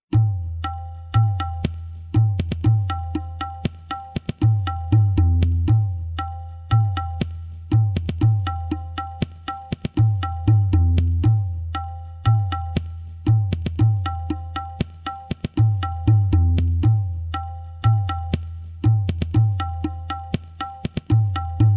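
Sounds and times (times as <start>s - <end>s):
music with tala rhythm: 0.1s - 21.7s.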